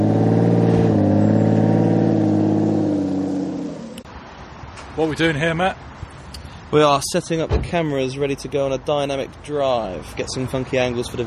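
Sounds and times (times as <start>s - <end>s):
big car's 6-litre V12 engine revving: 0.0s - 4.1s
speech: 5.0s - 5.9s, 6.7s - 11.2s.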